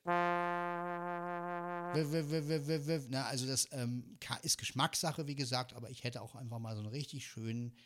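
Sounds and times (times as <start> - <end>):
keyboard synthesized brass voice held with vibrato: 0.0 - 2.7
speech: 1.9 - 7.8.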